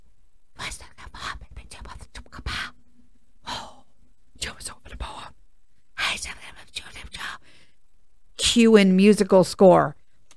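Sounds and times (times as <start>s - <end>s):
voice imitating barely audible whispered movie dialogue: 0.6s - 2.8s, 3.4s - 5.4s, 6.0s - 7.4s
speech: 8.6s - 10.0s.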